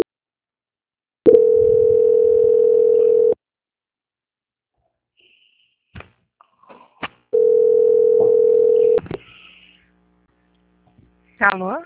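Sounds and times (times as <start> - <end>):
long mid-pitched beeps on a telephone line during call transfer: 1.3 - 3.4, 7.4 - 9.0.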